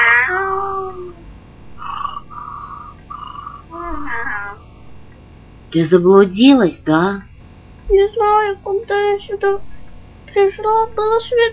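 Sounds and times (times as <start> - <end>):
kitten meowing: 3.2 - 4.6
speech: 5.7 - 7.3, 7.9 - 9.7, 10.3 - 11.5.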